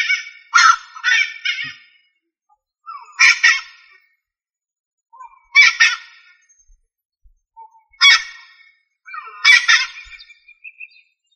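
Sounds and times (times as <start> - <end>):
rail making rough squawking calls: 0.0 - 2.0, 2.9 - 4.0, 5.2 - 6.5, 7.6 - 11.0.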